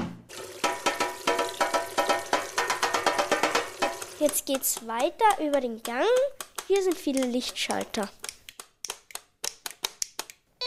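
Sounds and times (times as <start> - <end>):
water running into a kitchen sink: 0.3 - 4.4
speech: 4.2 - 8.2.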